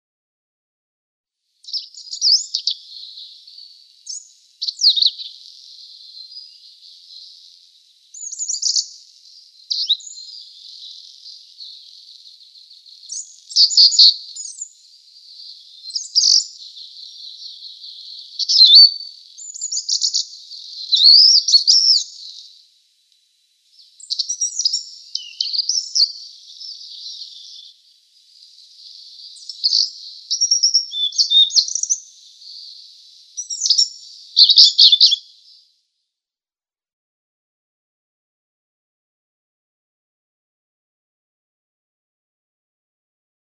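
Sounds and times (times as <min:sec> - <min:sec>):
Asian Brown Flycatcher singing: 0:01.6 - 0:22.7, 0:23.7 - 0:35.7.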